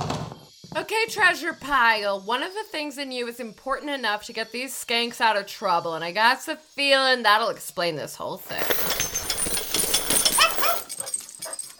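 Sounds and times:
speech: 0.7s - 9.0s
small dog whimpering yips: 10.3s - 11.1s.

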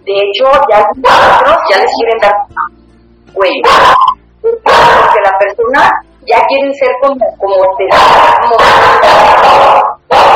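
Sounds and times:
speech: 0.0s - 2.8s, 3.4s - 4.2s, 5.3s - 10.3s
small dog barking in sharp yaps: 3.6s - 5.2s, 7.9s - 10.3s.

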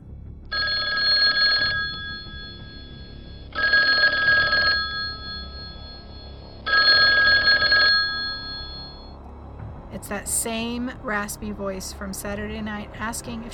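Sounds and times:
telephone ringing: 0.5s - 9.1s
speech: 10.1s - 13.5s.

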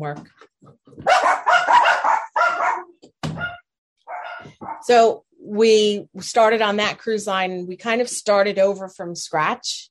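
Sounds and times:
speech: 0.0s - 0.5s, 4.8s - 9.8s
dog barking: 1.0s - 4.9s.

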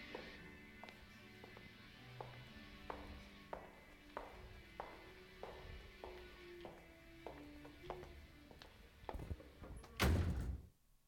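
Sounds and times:
footsteps at walking pace: 0.0s - 10.0s
door slamming: 9.9s - 10.7s.

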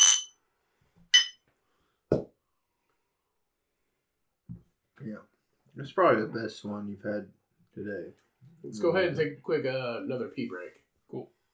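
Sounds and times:
beer glasses clinking in a toast: 0.0s - 0.3s, 1.2s - 1.4s
speech: 5.0s - 11.4s.

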